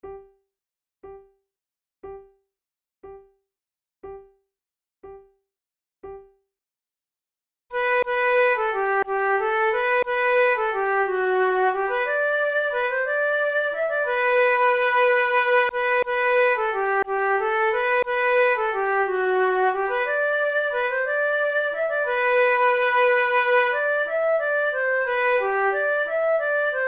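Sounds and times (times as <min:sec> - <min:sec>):
horn duet: 0:07.8 - 0:26.8.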